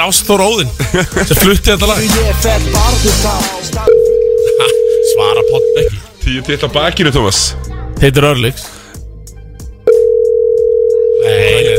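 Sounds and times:
speech: 0:00.0 - 0:03.9, 0:04.6 - 0:08.8
laughter: 0:00.8 - 0:01.7
steady single-pitched telephone tone on an outgoing call: 0:03.9 - 0:05.9, 0:09.9 - 0:11.7.

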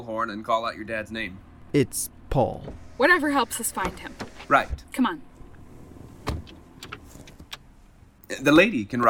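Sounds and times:
speech: 0:00.0 - 0:05.3, 0:08.3 - 0:09.0
police squad car door shutting: 0:02.4 - 0:07.9.

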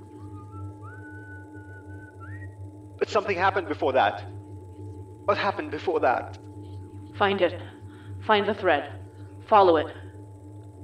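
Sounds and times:
constant low hum: 0:00.0 - 0:10.8
man whistling a slow wavering tune: 0:00.2 - 0:02.6
speech: 0:03.1 - 0:04.4, 0:05.3 - 0:06.4, 0:07.2 - 0:10.0.

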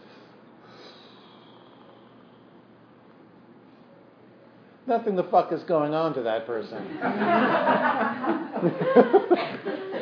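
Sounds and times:
person demonstrating slow deep breathing: 0:00.0 - 0:02.7
speech: 0:04.9 - 0:09.9
laughter: 0:06.8 - 0:10.0.

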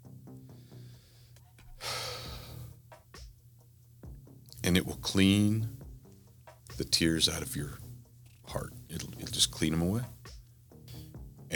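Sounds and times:
low hum: 0:00.0 - 0:11.5
deep breath drawn in: 0:00.5 - 0:02.8
speech: 0:04.6 - 0:05.8, 0:06.8 - 0:07.8, 0:08.5 - 0:10.2.

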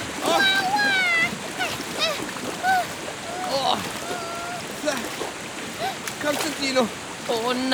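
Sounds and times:
rushing water roar: 0:00.0 - 0:07.7
people calling out: 0:00.2 - 0:05.1
speech: 0:06.8 - 0:07.7.

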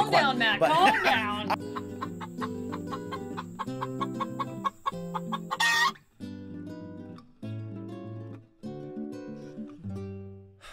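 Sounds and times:
speech: 0:00.1 - 0:01.6
laughter: 0:00.6 - 0:02.2
flock of chickens clucking and chattering: 0:00.8 - 0:06.1
chicken squawk: 0:01.6 - 0:06.0.

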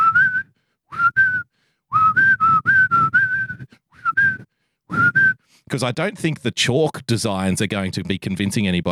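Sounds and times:
person whistling a catchy chant-like tune: 0:00.0 - 0:05.4
speech: 0:05.7 - 0:08.9.

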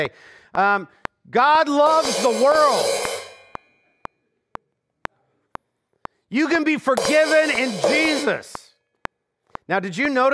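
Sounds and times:
speech: 0:00.0 - 0:03.1, 0:06.3 - 0:08.6, 0:09.7 - 0:10.3
cymbal being struck: 0:01.9 - 0:03.9, 0:07.0 - 0:08.6.

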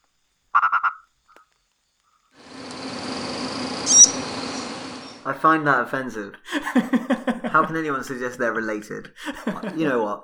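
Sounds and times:
night insects: 0:00.0 - 0:05.4
purple frog croaking call: 0:00.5 - 0:01.5, 0:02.4 - 0:05.3
speech: 0:05.3 - 0:10.2
laughter: 0:06.4 - 0:08.0, 0:09.0 - 0:10.1.

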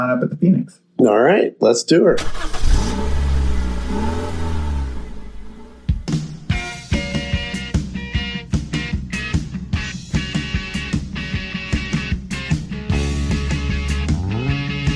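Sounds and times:
speech: 0:00.0 - 0:03.1
car engine revving and accelerating: 0:02.2 - 0:06.8
rhythmic beat-driven music with sharp percussive hits: 0:05.8 - 0:14.9.

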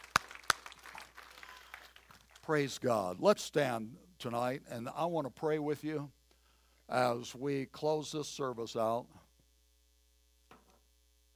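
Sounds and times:
sharp handclaps: 0:00.0 - 0:02.5
faint scattered crowd applause: 0:00.0 - 0:02.8
speech: 0:02.5 - 0:06.2, 0:06.9 - 0:09.2.

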